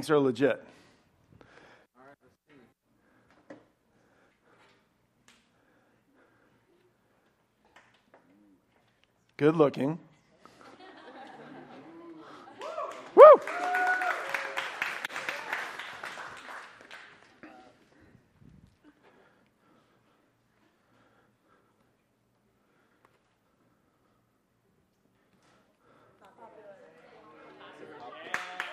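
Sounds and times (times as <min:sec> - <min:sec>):
speech: 0:00.0 - 0:00.8, 0:09.4 - 0:10.1
laughter: 0:10.4 - 0:13.2
crowd clapping and cheering: 0:12.4 - 0:17.6, 0:27.7 - 0:28.7.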